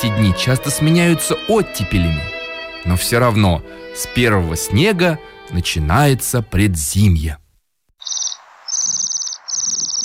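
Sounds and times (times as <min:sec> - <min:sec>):
speech: 0:00.0 - 0:07.4
waxwings trilling: 0:08.0 - 0:10.0.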